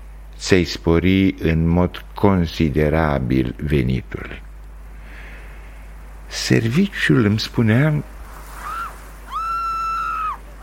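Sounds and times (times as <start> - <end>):
speech: 0.4 - 4.4, 6.3 - 8.1
person giving a short cry: 8.6 - 10.6
person screaming high-pitched: 8.6 - 10.6.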